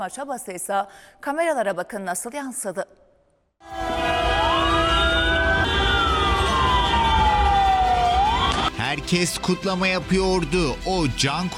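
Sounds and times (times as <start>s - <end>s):
speech: 0.0s - 3.0s, 9.0s - 11.5s
ambulance siren wailing in a street convoy celebrating a football club's promotion: 3.6s - 8.8s.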